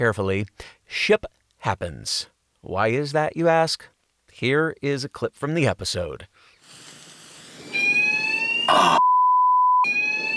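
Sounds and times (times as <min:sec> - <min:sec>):
speech: 0:00.0 - 0:06.4
fire alarm blaring with a shrill electronic tone: 0:07.7 - 0:09.2, 0:09.8 - 0:10.3
pure sustained beep: 0:07.7 - 0:10.3.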